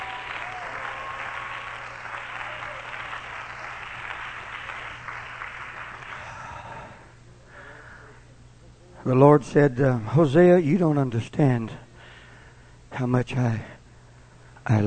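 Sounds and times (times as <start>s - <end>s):
congregation clapping hands: 0.0s - 6.9s
speech: 9.1s - 11.8s, 13.0s - 13.7s, 14.6s - 14.8s.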